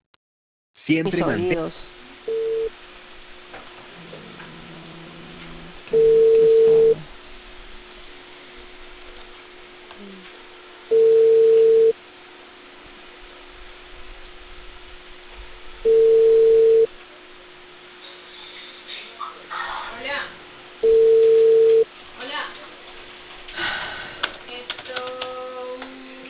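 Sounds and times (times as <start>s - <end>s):
speech: 0.9s - 2.4s
telephone ringback tone while placing a call: 2.3s - 2.7s, 5.9s - 7.0s, 10.9s - 12.0s, 15.8s - 16.9s, 20.8s - 21.9s.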